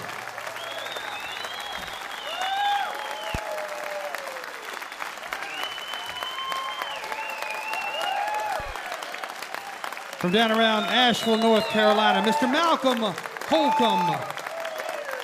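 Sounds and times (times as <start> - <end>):
audience cheering: 0.0 - 15.2
live audience applauding after a song performance: 0.0 - 15.2
audience whistles: 0.5 - 3.7, 4.6 - 8.9, 10.2 - 12.4, 13.8 - 15.2
speech: 10.2 - 14.4.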